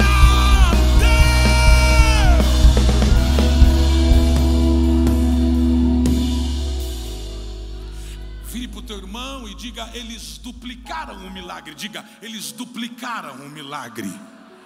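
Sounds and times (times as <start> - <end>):
audience shouting and cheering in praise: 0.0 - 9.0
speech: 10.0 - 14.4.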